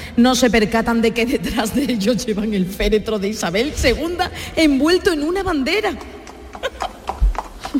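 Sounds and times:
speech: 0.2 - 6.8
horse hooves clip-clopping at a trot: 5.6 - 7.7.

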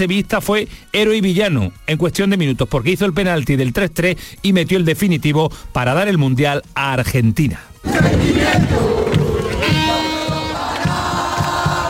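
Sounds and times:
speech: 0.0 - 9.8
dense crowd of Argentine football fans chanting and cheering outdoors: 7.8 - 11.8
horns or whistles blaring: 7.8 - 11.8
steady pounding beat: 7.8 - 11.8.

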